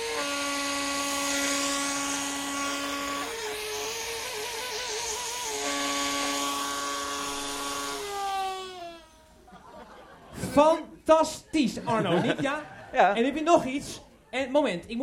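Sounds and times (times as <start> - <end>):
balloon suction whistle driven by vacuum cleaner: 0.0 - 9.4
vacuum cleaner rushing drone: 0.0 - 9.5
laughter: 9.3 - 10.8, 11.4 - 14.3
speech: 10.6 - 15.0.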